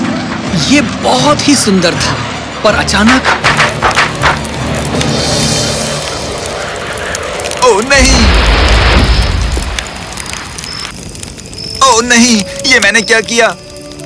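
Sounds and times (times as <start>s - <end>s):
loud sustained rumbling firecracker blast: 0.0s - 11.7s
speech: 0.7s - 3.4s, 7.7s - 8.3s, 12.0s - 13.6s
firecrackers exploding in the sky: 2.8s - 14.0s.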